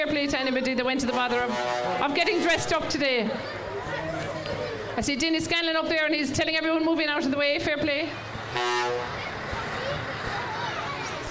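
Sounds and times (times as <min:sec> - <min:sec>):
speech: 0:00.0 - 0:03.6, 0:05.0 - 0:09.2
busy outdoor street noise: 0:00.0 - 0:11.2
murmur of voices: 0:00.0 - 0:11.2
truck horn toot in a parade: 0:01.0 - 0:02.6, 0:08.5 - 0:09.2.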